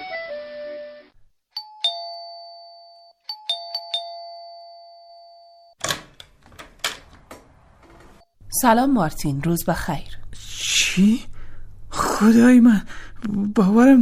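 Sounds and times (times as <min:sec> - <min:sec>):
doorbell chiming: 0:01.6 - 0:05.8
speech: 0:08.6 - 0:10.1, 0:11.0 - 0:11.3, 0:12.2 - 0:14.0.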